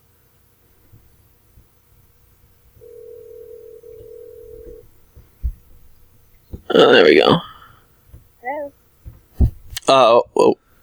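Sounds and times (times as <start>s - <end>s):
low hum: 0.0s - 10.8s
electronic telephone ring tone: 2.8s - 5.0s
soft knock: 4.0s - 6.7s, 9.0s - 9.8s
speech: 6.8s - 7.5s, 9.9s - 10.6s.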